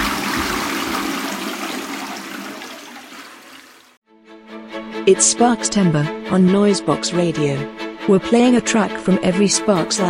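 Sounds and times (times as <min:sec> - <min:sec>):
toilet flushing: 0:00.0 - 0:04.0
speech: 0:05.0 - 0:10.0.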